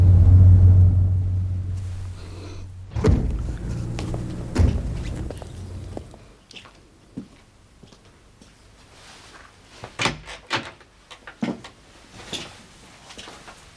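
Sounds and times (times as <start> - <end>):
car engine rumble as car pulls up and stops: 0.0 - 6.2
heavy thuds: 0.0 - 6.2.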